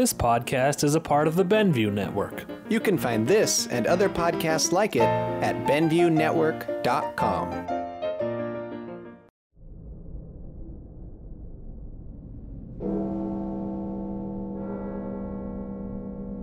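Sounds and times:
speech: 0.0s - 7.8s
low rumble: 9.6s - 16.4s
deep resonant bell chimes marking midnight: 12.8s - 16.4s.

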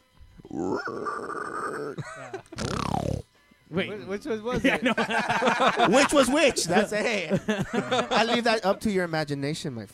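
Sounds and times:
person imitating a loud breathy dinosaur roar: 0.4s - 2.0s, 2.6s - 3.2s
short harsh vocal rasp: 0.4s - 2.0s, 2.6s - 3.2s
person imitating a long growly pig grunting: 0.4s - 3.2s
speech: 0.8s - 9.9s
laughter: 1.9s - 2.7s, 4.5s - 8.9s.

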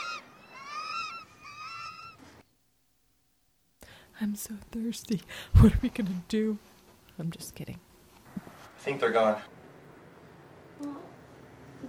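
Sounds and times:
birds honking: 0.0s - 2.4s
speech: 4.2s - 7.9s, 8.8s - 9.6s.

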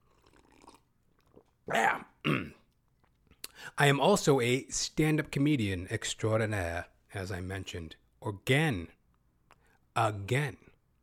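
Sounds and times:
person gulping water: 0.0s - 3.6s
speech: 1.7s - 2.4s, 3.8s - 9.0s, 10.0s - 10.6s.

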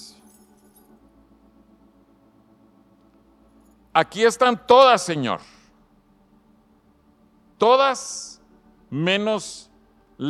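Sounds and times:
bunch of keys jangling: 0.0s - 1.0s
soft musical drone: 0.0s - 10.2s
speech: 4.0s - 5.6s, 7.6s - 10.2s.

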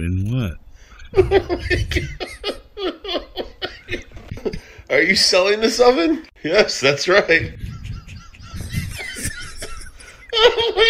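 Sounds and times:
speech: 0.0s - 3.2s, 4.9s - 7.7s
laughter: 1.1s - 4.6s, 7.0s - 10.8s
chicken clucking and squawking in a played video: 7.4s - 9.3s.

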